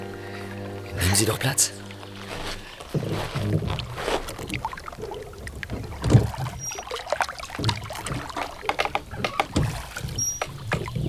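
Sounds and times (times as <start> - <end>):
rowboat oars splashing and dripping: 0.0 - 11.0
speech: 1.0 - 1.9, 3.1 - 4.0
rowboat wooden creaks and knocks: 2.3 - 11.0.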